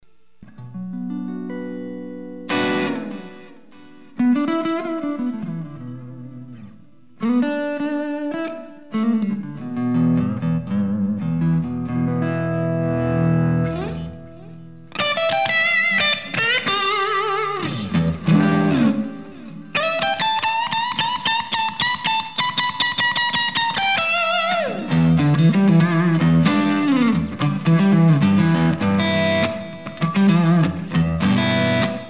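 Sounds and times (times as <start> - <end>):
guitar through overdrive pedal at half gain: 0.0 - 32.0.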